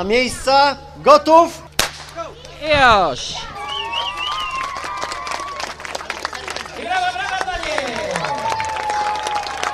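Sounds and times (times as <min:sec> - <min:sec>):
speech: 0:00.0 - 0:01.6, 0:02.6 - 0:03.5
crowd shouting and whooping at the start of a running race: 0:03.3 - 0:06.0, 0:06.8 - 0:09.7
crowd applauding at the start of a running race: 0:03.6 - 0:09.7.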